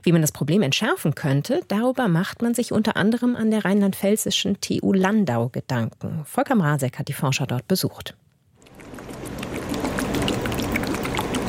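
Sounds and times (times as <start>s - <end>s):
speech: 0.0s - 8.2s
laboratory shaker with circling metal basket sloshing water in plastic tubes: 8.6s - 11.4s.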